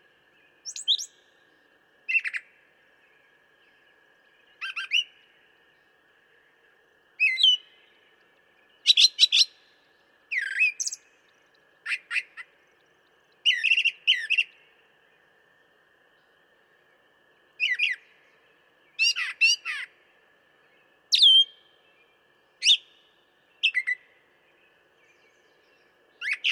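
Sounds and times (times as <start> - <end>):
constant hum: 0.0 - 26.5
brown thrasher singing varied rich phrases: 0.5 - 2.6, 3.6 - 5.6, 7.2 - 14.8, 17.6 - 26.5.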